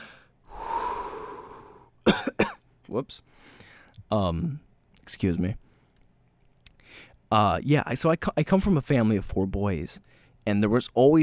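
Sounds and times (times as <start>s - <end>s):
person taking a deep breath: 0.0s - 2.0s, 3.3s - 4.0s, 6.8s - 7.2s
speech: 2.9s - 5.6s, 7.0s - 11.2s.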